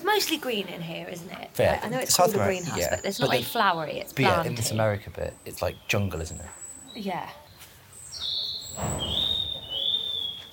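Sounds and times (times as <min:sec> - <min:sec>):
speech: 0:00.2 - 0:07.4, 0:08.2 - 0:09.2
birds whistling and chirping inside a greenhouse: 0:02.4 - 0:03.6, 0:05.4 - 0:07.2, 0:08.0 - 0:10.5.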